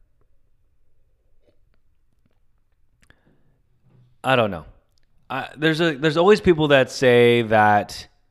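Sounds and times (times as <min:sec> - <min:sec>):
person sipping water: 0:01.1 - 0:03.6
speech: 0:04.2 - 0:08.1.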